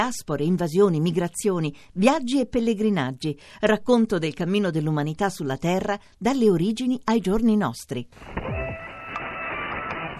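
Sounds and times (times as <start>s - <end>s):
speech: 0.0s - 8.8s
buzzing glitchy electronic tones of a radio theme jingle: 8.3s - 10.1s.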